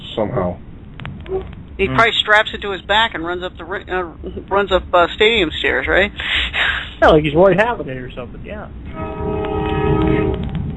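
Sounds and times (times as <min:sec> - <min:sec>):
rumbling train undercarriage: 0:00.0 - 0:10.7
speech: 0:00.2 - 0:00.7, 0:01.3 - 0:06.4, 0:07.0 - 0:09.1
passing train horn blaring: 0:08.9 - 0:10.6.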